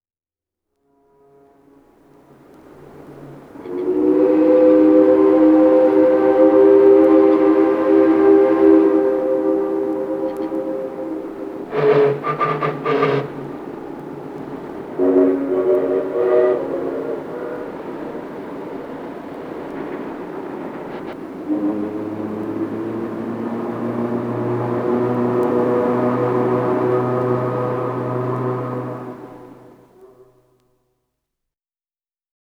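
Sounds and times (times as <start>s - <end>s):
various steam whistles: 0.9s - 30.6s.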